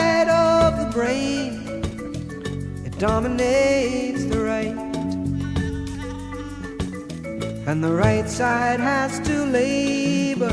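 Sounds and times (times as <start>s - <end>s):
musical backing: 0.0s - 10.5s
speech: 3.0s - 4.9s, 7.7s - 10.5s
sheep-like bleat: 5.4s - 6.9s.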